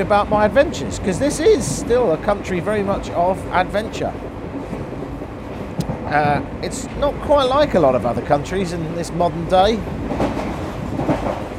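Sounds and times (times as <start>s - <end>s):
speech: 0.0s - 4.3s, 6.1s - 10.4s
train rolling along the rails in India heard from inside a carriage: 0.0s - 11.5s.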